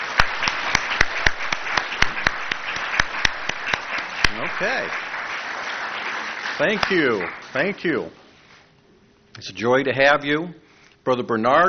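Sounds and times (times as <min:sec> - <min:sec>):
sharp irregular hand claps: 0:00.0 - 0:07.5
audience applause for first-time attendees: 0:00.0 - 0:07.9
speech: 0:04.6 - 0:05.1, 0:06.6 - 0:08.2, 0:09.4 - 0:11.6.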